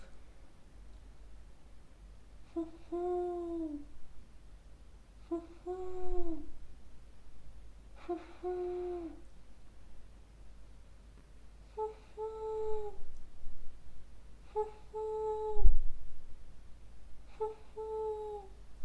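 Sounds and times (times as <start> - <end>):
owl call in head voice: 2.4 - 3.9, 5.2 - 6.6, 8.0 - 9.3, 11.7 - 13.1, 14.4 - 15.8, 17.3 - 18.6.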